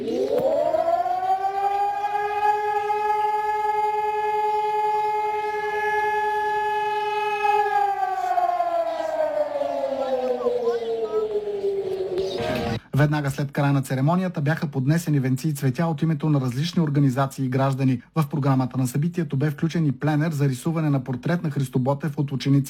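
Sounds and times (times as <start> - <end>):
civil defense sirens sounding during a commemoration: 0.0 - 12.8
speech: 13.0 - 22.6.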